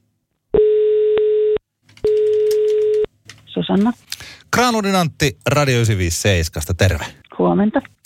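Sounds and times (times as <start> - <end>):
telephone ringback tone while a call connects: 0.6 - 3.1
speech: 3.7 - 8.0.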